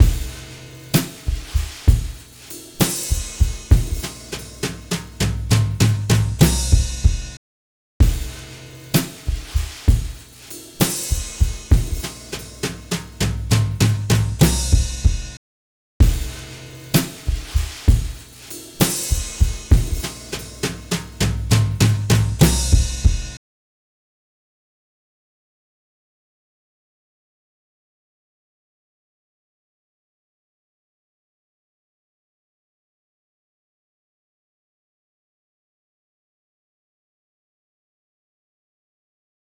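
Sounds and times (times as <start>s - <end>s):
drums in full saturation: 0.0s - 7.4s, 8.0s - 15.4s, 16.0s - 23.4s.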